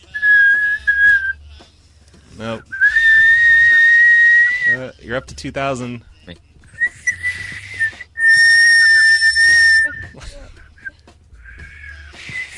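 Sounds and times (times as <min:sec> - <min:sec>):
person attempting to whistle by mouth: 0:00.1 - 0:01.4, 0:02.7 - 0:04.8, 0:06.8 - 0:10.2, 0:10.8 - 0:12.5
speech: 0:02.4 - 0:02.7, 0:05.1 - 0:06.5.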